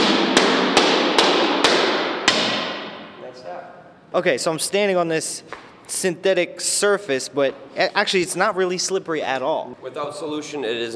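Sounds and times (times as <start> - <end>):
hammering plastic panels into place: 0.0 - 3.2
speech: 4.1 - 10.9.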